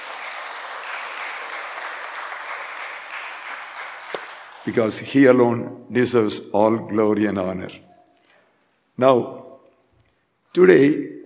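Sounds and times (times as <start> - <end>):
crowd applause: 0.0 - 4.9
speech: 4.6 - 7.9, 9.0 - 9.4, 10.6 - 11.2.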